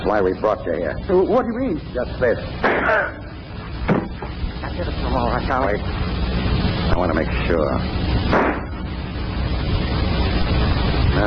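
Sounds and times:
speech: 0:00.0 - 0:03.2, 0:04.8 - 0:06.1, 0:06.9 - 0:08.6
low steady noisy rumble: 0:00.0 - 0:11.2
gunshot inside an empty deserted house: 0:08.3 - 0:08.7.

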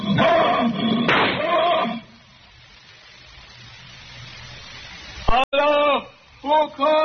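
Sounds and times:
dying lion roaring and groaning: 0:00.0 - 0:02.1
point-blank rifle shot: 0:01.1 - 0:01.5
speech: 0:06.6 - 0:07.0.

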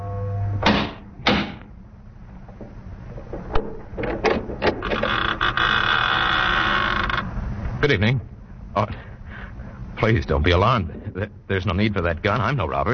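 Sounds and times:
massive oak chateau door thudding: 0:00.6 - 0:01.7, 0:02.5 - 0:05.6
massive oak door swinging open with a long creaking groan: 0:02.5 - 0:07.3
speech: 0:07.9 - 0:09.1, 0:10.0 - 0:12.9.

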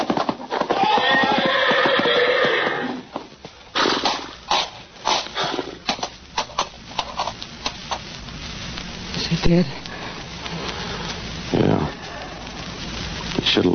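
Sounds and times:
horse hooves stamping and thudding while trampling a man: 0:00.0 - 0:13.7
horse in a stall neighing: 0:00.5 - 0:03.1
speech: 0:09.5 - 0:09.8.

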